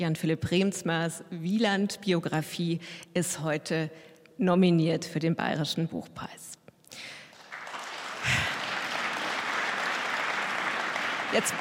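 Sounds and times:
speech: 0.0 - 7.2, 11.3 - 11.5
audience applause at a book prize ceremony: 7.3 - 11.5.

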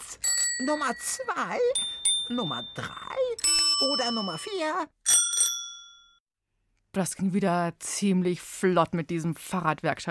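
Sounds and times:
bicycle bell dinging: 0.2 - 6.2
speech: 0.6 - 5.0, 6.9 - 10.0.

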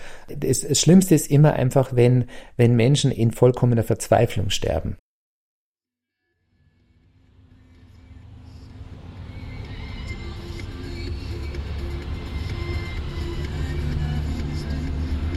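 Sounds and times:
speech: 0.3 - 5.0
engine rumble and road noise inside a moving car: 6.8 - 15.3.

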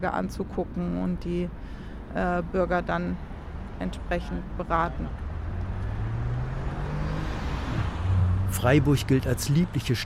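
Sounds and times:
speech: 0.0 - 5.2, 8.5 - 10.0
road traffic rumbling: 0.0 - 10.0
vehicle passing: 3.2 - 10.0.

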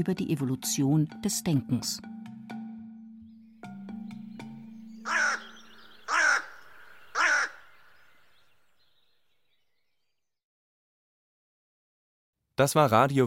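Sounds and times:
speech: 0.0 - 2.2, 12.6 - 13.2
crows cawing harshly: 3.6 - 8.6.

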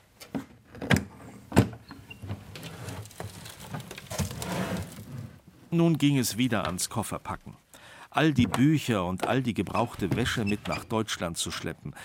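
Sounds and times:
old wooden hinges of a case lid creaking and squeaking: 1.8 - 5.3, 8.3 - 11.1
drawn-out grinding scrape: 2.7 - 5.4
speech: 5.7 - 7.6, 8.2 - 12.0.

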